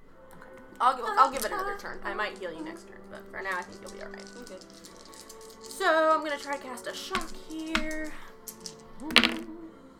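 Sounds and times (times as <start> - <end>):
dice tumbling across a tabletop during a game: 0.4 - 9.5
speech: 0.8 - 5.0, 5.8 - 8.3, 9.0 - 9.6.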